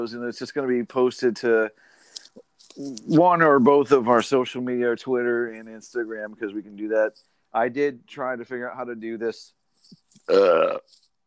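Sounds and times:
speech: 0.0 - 11.0
burp: 10.3 - 10.9.

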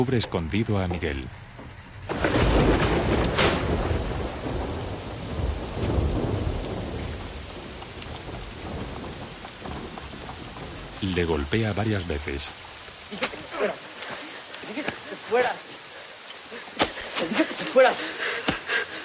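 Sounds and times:
speech: 0.0 - 1.5, 11.0 - 13.9, 15.3 - 15.6, 17.8 - 18.2
heavy rain pouring down: 0.0 - 19.0
deep roll of thunder: 2.0 - 13.2.

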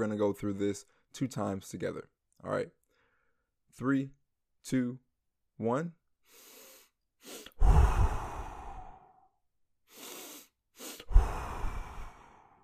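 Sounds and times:
speech: 0.0 - 2.8, 3.7 - 5.0, 5.6 - 6.5
quick double inhale through the nose and long sighing exhale: 2.8 - 3.6, 6.2 - 12.6.

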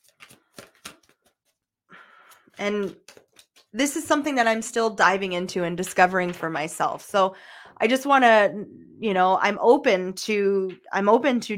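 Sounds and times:
cards being shuffled with papery riffling bursts: 0.0 - 4.3
speech: 2.6 - 3.0, 3.7 - 11.5.

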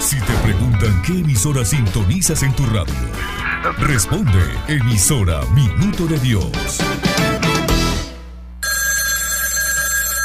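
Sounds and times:
speech: 0.1 - 7.3
telephone ringing with a bright metallic bell tone: 8.6 - 10.2.

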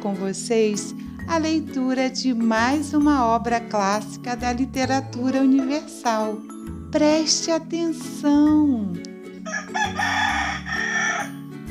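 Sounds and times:
speech: 0.0 - 10.6
rooster crowing: 9.4 - 11.4.

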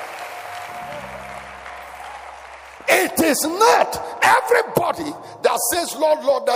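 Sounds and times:
church audience clapping: 0.0 - 4.0
speech: 2.9 - 6.5.

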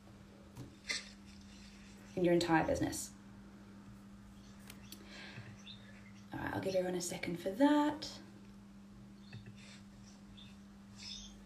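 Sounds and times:
steady low hum: 0.0 - 11.4
speech: 2.2 - 3.2, 6.6 - 8.2
faint birds cheeping in short high chirps: 4.3 - 6.4, 9.1 - 11.4.

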